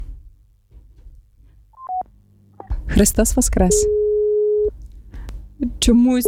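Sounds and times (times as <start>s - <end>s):
telephone tones from an incoming call-in line: 1.8s - 2.0s, 3.7s - 4.7s
speech: 2.9s - 4.0s, 5.8s - 6.2s.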